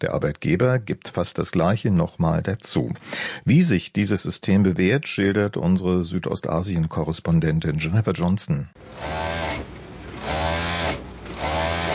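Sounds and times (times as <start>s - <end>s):
speech: 0.0s - 9.7s
sewing machine running in a small alterations tailoring shop in a covered market: 8.8s - 11.9s.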